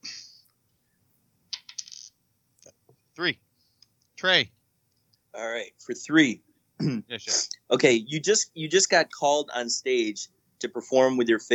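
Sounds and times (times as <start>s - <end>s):
dice clattering on a table: 1.6s - 2.2s
speech: 3.2s - 3.5s, 4.2s - 4.6s, 5.3s - 11.5s.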